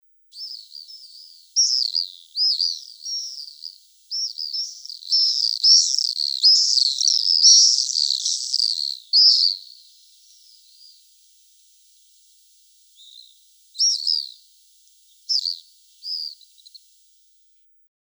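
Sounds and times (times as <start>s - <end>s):
white-rumped swift: 1.6s - 10.4s.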